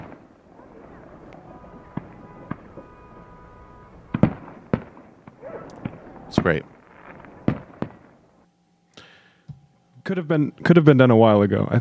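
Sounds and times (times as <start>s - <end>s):
fireworks exploding to celebrate a victory at a camp: 0.0s - 8.4s
murmuring background: 0.5s - 3.3s
speech: 6.4s - 6.7s, 10.1s - 11.7s.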